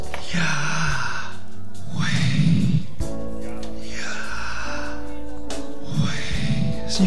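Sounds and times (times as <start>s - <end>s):
person breathing in and out naturally and slowly: 0.2s - 3.0s, 3.8s - 5.2s, 5.8s - 6.8s.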